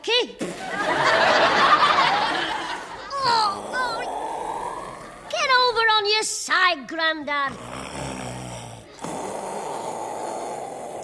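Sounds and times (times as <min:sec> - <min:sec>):
speech: 0:00.2 - 0:00.8, 0:06.2 - 0:08.2
laughter: 0:00.5 - 0:04.1
man snoring: 0:02.8 - 0:05.6, 0:07.4 - 0:11.0.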